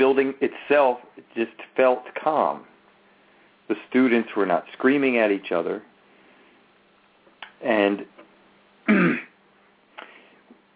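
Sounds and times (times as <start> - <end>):
speech: 0.2 - 2.7, 3.7 - 5.9, 7.6 - 8.1
person clearing throat: 8.9 - 9.4.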